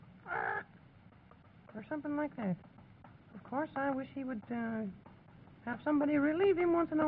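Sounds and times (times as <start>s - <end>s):
voice imitating a nasal crow-like bird caw: 0.3s - 0.7s
speech: 1.8s - 2.7s, 3.4s - 7.0s.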